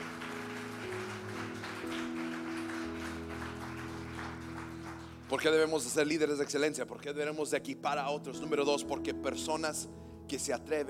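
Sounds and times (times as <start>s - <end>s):
audience applauding: 0.0s - 6.7s
sustained keyboard or organ chords: 0.0s - 10.8s
speech: 5.3s - 10.8s.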